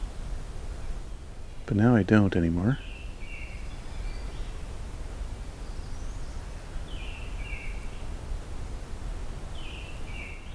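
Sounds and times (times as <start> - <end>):
steady outdoor hiss and rustle: 0.0 - 10.5
speech: 1.7 - 2.9
faint American robin calls: 2.8 - 8.2, 9.5 - 10.5.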